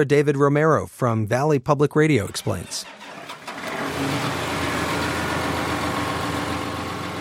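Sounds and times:
speech: 0.0 - 3.0, 4.0 - 4.4
tractor engine starting and idling: 2.2 - 7.1.

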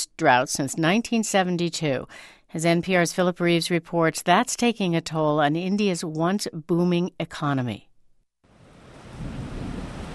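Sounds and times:
speech: 0.2 - 7.9
monsoon rain hissing in India: 8.5 - 10.1
monsoon thunder rumbling in India: 8.6 - 10.1.

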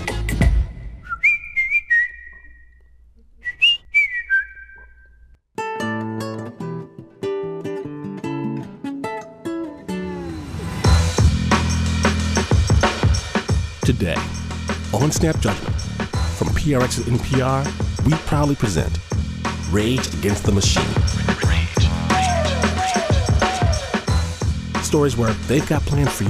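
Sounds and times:
person whistling a short catchy melody with sliding notes: 1.0 - 2.8, 3.4 - 5.2
full instrumental music track: 5.6 - 26.2
speech: 14.0 - 14.3, 14.9 - 15.8, 16.6 - 19.0, 19.7 - 21.0, 24.9 - 26.2.

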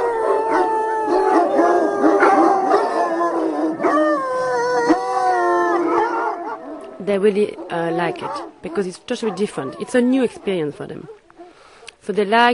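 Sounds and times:
pack of hunting hounds howling and baying: 0.0 - 11.9
hunting hounds barking and yipping: 0.0 - 12.0
speech: 7.1 - 11.2, 12.0 - 12.5.

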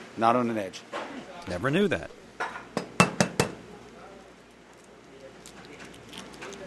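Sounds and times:
speech: 0.2 - 2.2
eggs cracked on a flat surface: 4.7 - 6.6.

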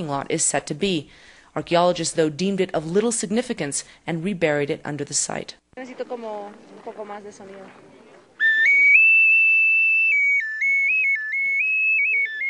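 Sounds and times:
speech: 0.0 - 8.0
clay whistle blown loud and shrill: 8.4 - 12.4.

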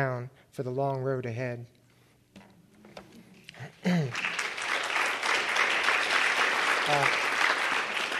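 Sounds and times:
speech: 0.0 - 1.8, 3.8 - 4.3, 6.9 - 7.2
audience applauding: 3.6 - 8.1.

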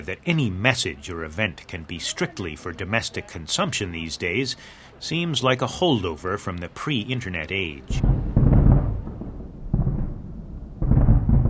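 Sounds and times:
speech: 0.0 - 8.3
distant fireworks exploding: 7.9 - 11.4.

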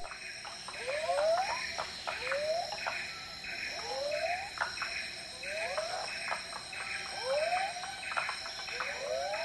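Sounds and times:
dense steady insect drone: 0.0 - 9.4
frogs repeating rising whooping calls: 0.0 - 9.4.

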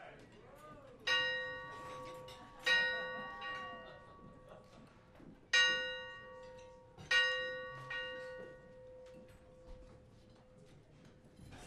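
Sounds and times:
church bell tolling: 1.1 - 4.7, 5.5 - 9.9.

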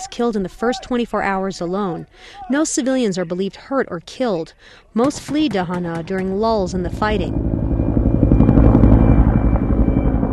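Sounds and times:
speech: 0.0 - 7.5
Cobra military attack helicopter rotor blades chopping overhead: 5.1 - 10.3
Cobra military attack helicopter engine roar: 6.2 - 10.3.

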